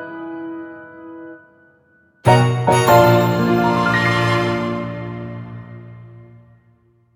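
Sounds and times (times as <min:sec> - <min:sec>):
fancy treasure chest jingle: 0:02.2 - 0:06.6.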